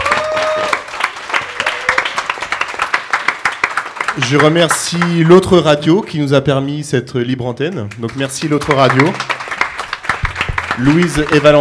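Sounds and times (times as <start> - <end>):
room full of people applauding: 0.0 - 5.3, 8.0 - 11.5
speech: 4.2 - 9.4, 10.8 - 11.5.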